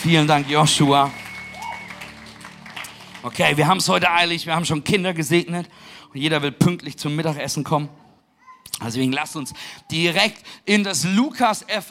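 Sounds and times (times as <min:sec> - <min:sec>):
speech: 0:00.0 - 0:01.2, 0:03.2 - 0:08.0, 0:08.6 - 0:11.8
church audience applauding after a prayer: 0:00.0 - 0:04.7.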